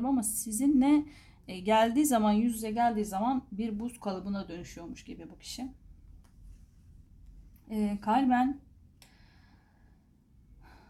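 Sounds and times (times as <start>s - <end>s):
speech: 0.0s - 5.8s, 7.7s - 8.6s
deep airy breath drawn in close to the microphone: 9.0s - 10.8s.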